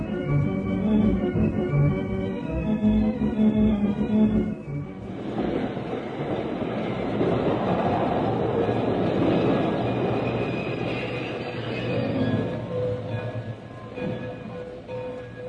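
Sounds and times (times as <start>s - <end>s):
old steam train engine rumbling along the rails up to a river: 0.0s - 15.4s.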